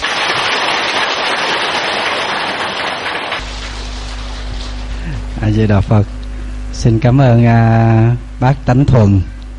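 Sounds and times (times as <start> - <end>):
audience applause: 0.0 - 3.4
low electrical hum: 0.0 - 9.5
speech: 5.5 - 9.4.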